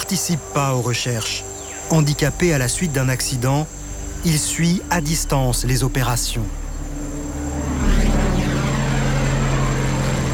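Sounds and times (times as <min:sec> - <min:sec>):
speech: 0:00.1 - 0:06.6
military propeller airplane roaring over a dense forest canopy: 0:06.5 - 0:10.3.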